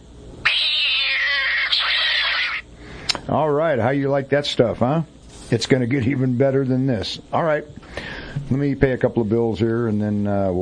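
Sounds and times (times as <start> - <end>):
studio cat meowing in a long drawn-out yowl: 0.4 - 2.6
speech: 3.3 - 10.6.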